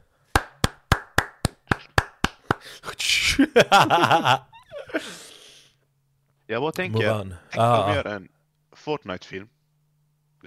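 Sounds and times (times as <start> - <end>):
sharp hand claps: 0.3 - 2.7
speech: 2.7 - 5.1, 6.5 - 9.6
laughter: 3.4 - 5.2.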